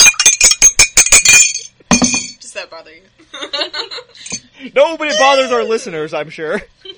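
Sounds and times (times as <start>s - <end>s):
ceramic tea cups clinking: 0.0s - 2.4s
speech: 4.6s - 6.9s.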